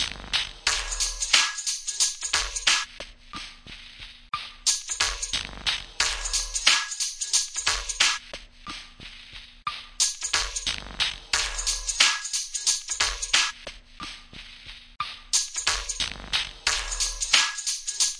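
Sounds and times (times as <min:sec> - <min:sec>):
dirty breakbeat through an old radio at 90 bpm: 0:00.0 - 0:18.1.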